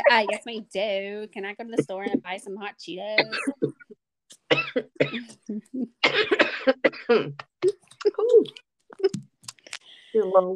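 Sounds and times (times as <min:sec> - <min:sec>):
speech: 0:00.0 - 0:03.7, 0:04.5 - 0:08.6, 0:10.2 - 0:10.5
person faking a cough with exaggerated hacking bursts: 0:03.2 - 0:03.8, 0:04.5 - 0:05.3, 0:06.0 - 0:07.4.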